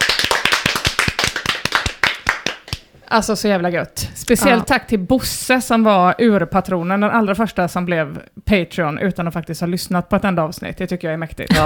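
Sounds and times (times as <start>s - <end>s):
hand clapping in celebration: 0.0s - 3.0s
speech: 3.1s - 11.6s.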